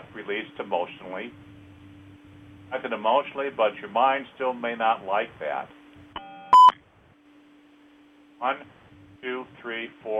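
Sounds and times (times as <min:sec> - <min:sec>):
faint steady hum: 0:00.0 - 0:10.1
speech: 0:00.2 - 0:01.5, 0:02.7 - 0:05.8, 0:08.4 - 0:10.1
electronic phone-line beep as a caller connects: 0:06.2 - 0:06.8.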